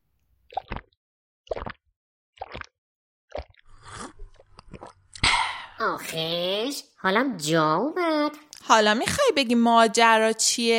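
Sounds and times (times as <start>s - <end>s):
busy continuous munching with clicks and gulps: 0.5s - 5.8s
wet chewing and smacking: 1.5s - 1.8s, 2.4s - 2.7s, 3.3s - 5.2s
speech: 5.9s - 10.7s.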